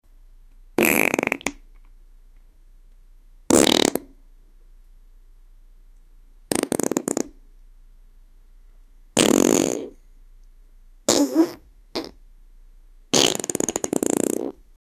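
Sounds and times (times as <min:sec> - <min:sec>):
person farting in public: 0:00.8 - 0:01.6, 0:03.5 - 0:04.2, 0:06.5 - 0:07.4, 0:09.2 - 0:10.0, 0:11.1 - 0:12.2, 0:13.1 - 0:14.6.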